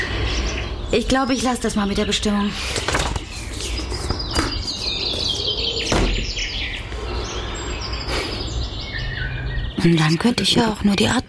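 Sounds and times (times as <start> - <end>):
birds chirping and twittering in a park: 0.0 - 11.2
steady hum: 0.0 - 11.2
speech: 0.9 - 2.9, 9.8 - 11.2.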